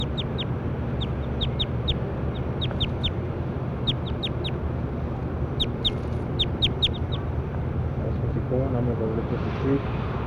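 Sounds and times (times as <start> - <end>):
bird calls as sharp high chirps: 0.0 - 4.6, 5.5 - 7.2
steady low rumbling background: 0.0 - 8.9
speech: 9.0 - 10.1.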